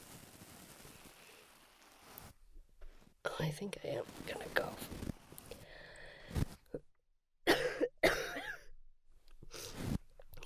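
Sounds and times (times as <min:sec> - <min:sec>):
speech: 0:03.4 - 0:05.1
dry unproductive coughs: 0:07.4 - 0:08.7.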